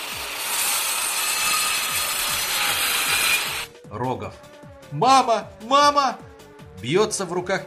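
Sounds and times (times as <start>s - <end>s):
machine tool with two saws spinning: 0.0s - 3.7s
speech: 3.9s - 7.6s.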